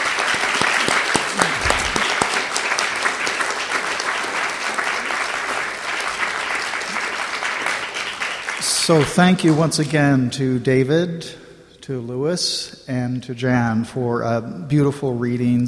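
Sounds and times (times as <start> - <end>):
audience applause: 0.0 - 9.6
speech: 8.9 - 15.6.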